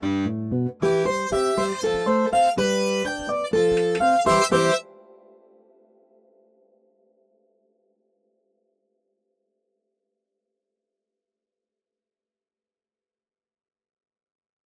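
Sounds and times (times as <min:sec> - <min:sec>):
musical notes: 0:00.0 - 0:05.6.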